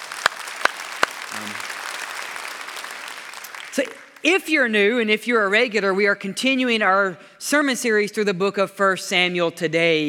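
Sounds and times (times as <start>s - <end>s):
roomful of people applauding in welcome: 0.0s - 4.3s
sharp claps: 0.0s - 4.3s
speech: 3.8s - 10.0s.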